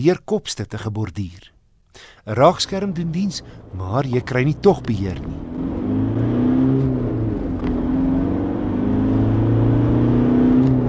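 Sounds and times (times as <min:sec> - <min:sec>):
speech: 0:00.0 - 0:05.5
2.5 turbo diesel pickup engine revving gently: 0:02.4 - 0:10.8.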